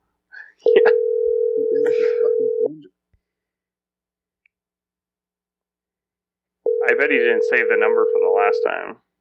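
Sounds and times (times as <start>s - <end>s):
phone call ringback tone: 0.6s - 2.7s, 6.7s - 8.8s
speech: 7.0s - 9.0s.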